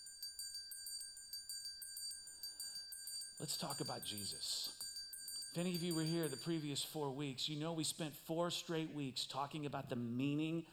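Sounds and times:
metallic bell ringing rapidly: 0:00.0 - 0:07.1
speech: 0:03.4 - 0:04.8, 0:05.5 - 0:10.7.

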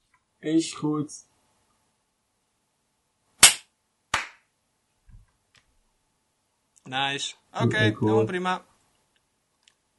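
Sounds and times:
speech: 0:00.4 - 0:01.3, 0:06.9 - 0:08.7
hand clapping: 0:03.4 - 0:04.5.

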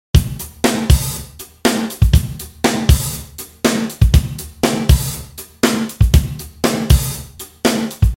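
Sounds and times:
120 BPM upbeat drum loop: 0:00.2 - 0:08.1.

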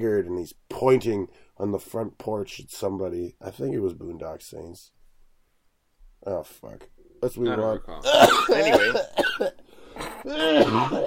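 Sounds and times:
speech: 0:00.0 - 0:05.0, 0:06.2 - 0:11.0
exaggerated throat clearing: 0:08.0 - 0:11.0
person giving a drawn-out hammed up cough: 0:08.0 - 0:11.0.

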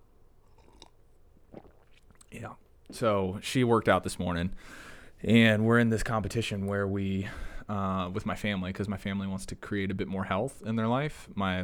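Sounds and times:
soft swallow: 0:00.4 - 0:02.6
lip noise: 0:00.4 - 0:03.0
slurping sip of hot coffee: 0:00.4 - 0:03.0
speech: 0:02.3 - 0:11.6.

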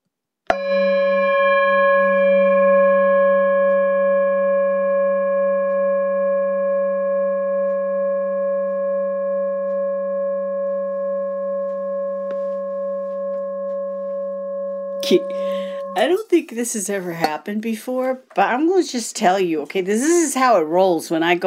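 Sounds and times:
singing bowl struck and ringing: 0:00.5 - 0:16.3
speech: 0:15.1 - 0:21.4.

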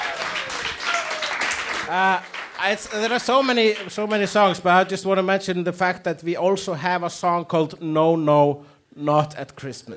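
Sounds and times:
crowd applause: 0:00.0 - 0:04.4
speech: 0:01.9 - 0:09.9.

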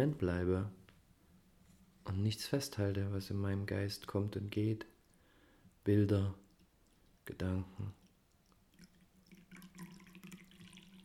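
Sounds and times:
speech: 0:00.0 - 0:00.8, 0:02.0 - 0:04.9, 0:05.8 - 0:06.4, 0:07.3 - 0:08.0
green tea being poured into a cup: 0:06.4 - 0:11.0.

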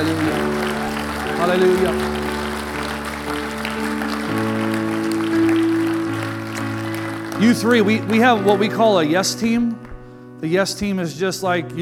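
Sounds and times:
crowd clapping and cheering: 0:00.0 - 0:10.1
speech: 0:01.4 - 0:02.2, 0:07.4 - 0:09.8, 0:10.4 - 0:11.8.

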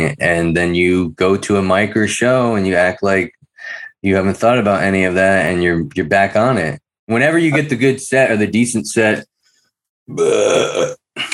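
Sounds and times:
speech: 0:00.0 - 0:09.3, 0:10.1 - 0:11.3
burp after drinking tea: 0:10.1 - 0:11.2.

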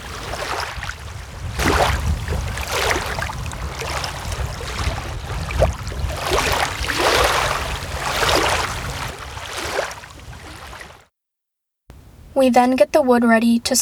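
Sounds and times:
gentle water waves washing through rocks: 0:00.0 - 0:11.0
speech: 0:12.4 - 0:13.8.

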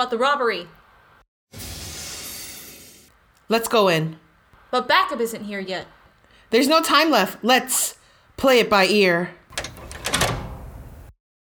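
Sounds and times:
speech: 0:00.0 - 0:00.8, 0:03.5 - 0:09.4
door opening: 0:09.5 - 0:11.1.

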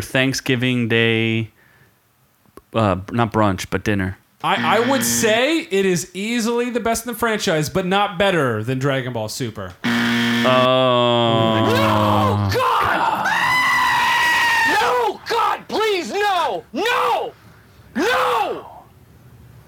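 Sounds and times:
speech: 0:00.0 - 0:01.6, 0:02.7 - 0:12.9
goat screaming: 0:11.6 - 0:17.3.

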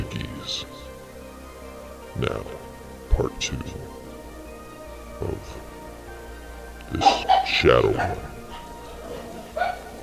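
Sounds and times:
speech: 0:02.2 - 0:04.0, 0:05.2 - 0:05.7, 0:06.9 - 0:08.3
short sharp dog bark: 0:07.0 - 0:10.0.

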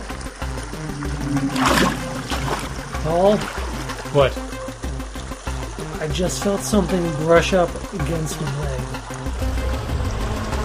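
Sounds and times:
low droning hum: 0:00.0 - 0:05.8
water trickling and sloshing: 0:00.0 - 0:10.6
speech: 0:03.0 - 0:04.5, 0:06.0 - 0:09.0.

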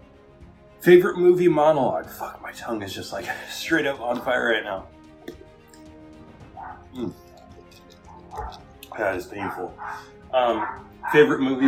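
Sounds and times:
speech: 0:00.8 - 0:05.0, 0:06.9 - 0:07.2, 0:08.4 - 0:11.6
dog barking outside: 0:06.5 - 0:07.2, 0:08.0 - 0:11.6.

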